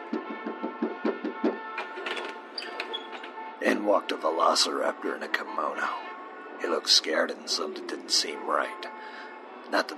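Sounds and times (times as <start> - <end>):
knocking on an office door: 0.0 - 1.8
speech: 0.1 - 0.6, 3.6 - 9.9.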